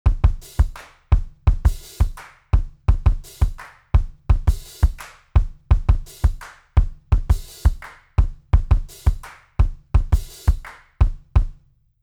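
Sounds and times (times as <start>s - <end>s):
drum pattern: 0.0s - 11.5s.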